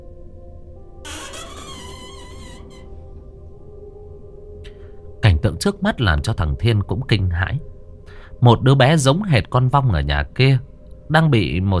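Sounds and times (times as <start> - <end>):
door creaking as it is pushed open: 1.1 - 3.7
speech: 5.4 - 7.8, 8.4 - 11.7.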